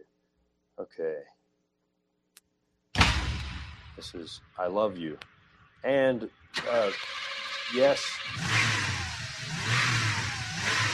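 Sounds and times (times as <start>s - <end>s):
speech: 0.8s - 1.4s, 4.0s - 8.6s
automobile engine revving: 6.6s - 10.9s.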